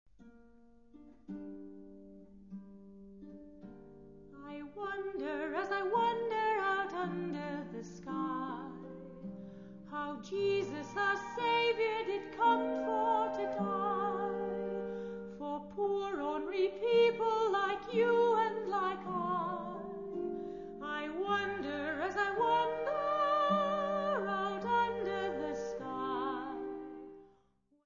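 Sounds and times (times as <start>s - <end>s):
voice: 4.4s - 8.8s, 10.0s - 14.4s, 15.4s - 19.9s, 20.8s - 26.6s.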